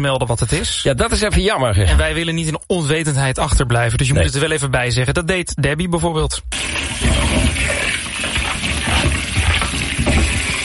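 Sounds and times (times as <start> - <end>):
speech: 0.0 - 8.3
running water rinsing celery stalks: 6.5 - 10.6.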